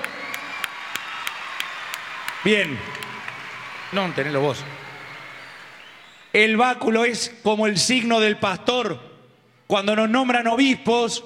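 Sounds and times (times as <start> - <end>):
audience applauding a seminarian: 0.0 - 6.4
speech: 2.4 - 3.1, 3.9 - 4.8, 6.3 - 9.1, 9.7 - 11.2.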